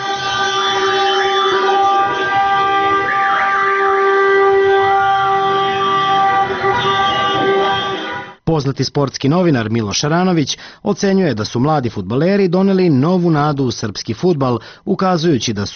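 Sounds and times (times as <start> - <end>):
car horns blaring at a street celebration after a football victory: 0.0 - 8.4
siren-like tones at a street celebration: 0.0 - 8.4
speech: 8.6 - 15.7.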